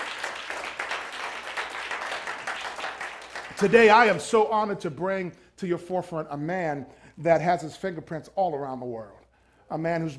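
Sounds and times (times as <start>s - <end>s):
audience applause: 0.0s - 4.0s
speech: 3.6s - 10.1s.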